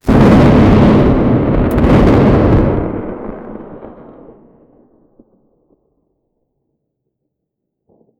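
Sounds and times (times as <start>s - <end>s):
magical lightning bolt: 0.1s - 4.3s.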